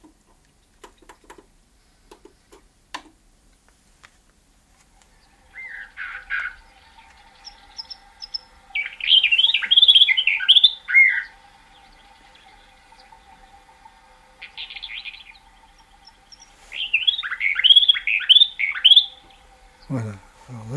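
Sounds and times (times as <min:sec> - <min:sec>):
faint steady ticking: 0:00.0 - 0:20.7
recorded Greek bird song played from a disc: 0:05.0 - 0:20.7.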